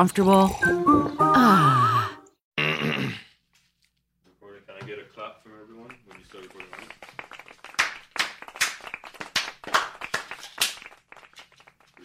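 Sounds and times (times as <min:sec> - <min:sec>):
speech: 0:00.0 - 0:01.9
small soft hand claps: 0:05.8 - 0:12.0.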